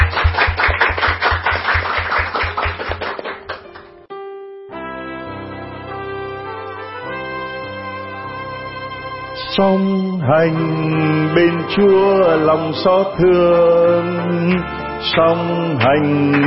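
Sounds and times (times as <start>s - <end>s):
thumping beat: 0.0s - 3.5s
crowd applauding in a steady rhythm: 0.0s - 4.0s
sustained keyboard music: 0.0s - 16.4s
speech: 9.6s - 16.4s.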